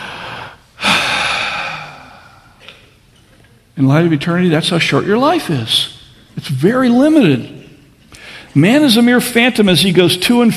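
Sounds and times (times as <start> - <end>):
deep breath: 0.0 - 2.9, 8.1 - 8.6
speech: 3.8 - 7.6, 8.5 - 10.5.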